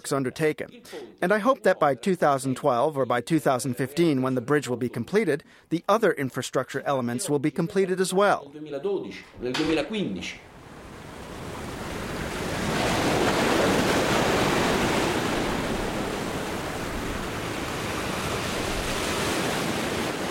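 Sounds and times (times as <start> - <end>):
speech: 0.1 - 10.5
waves on the Straits of Messina between Calabria and Sicily: 10.5 - 20.3.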